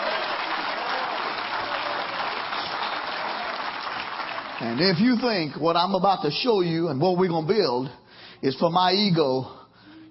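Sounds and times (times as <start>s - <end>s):
large crowd applauding: 0.0s - 5.9s
speech: 4.6s - 10.0s.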